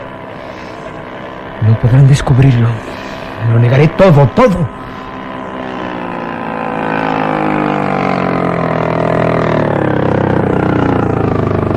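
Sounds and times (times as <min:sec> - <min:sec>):
motor launch engine droning: 0:00.0 - 0:11.7
speech: 0:01.7 - 0:04.8.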